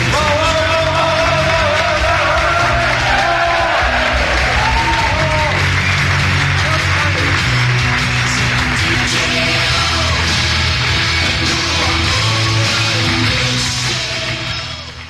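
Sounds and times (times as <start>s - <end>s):
large audience applauding at the end of a university chemistry lecture: 0.0s - 15.0s
audience shouts and whoops: 0.9s - 5.8s.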